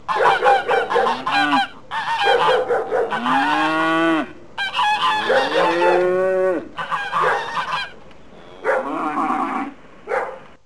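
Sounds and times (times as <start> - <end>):
farm animals giving nasal honks and rising cries: 0.0 - 10.3.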